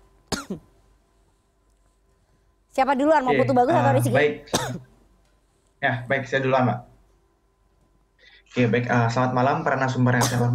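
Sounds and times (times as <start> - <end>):
person coughing: 0.3 - 0.7, 4.5 - 4.9, 10.2 - 10.5
speech: 0.5 - 0.7, 2.8 - 4.9, 5.8 - 6.9, 8.5 - 10.5.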